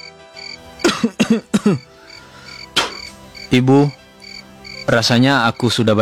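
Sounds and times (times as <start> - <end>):
child coughing harsh wet coughs: 0.8 - 1.9
speech: 1.0 - 1.9, 3.5 - 4.0, 4.9 - 6.0.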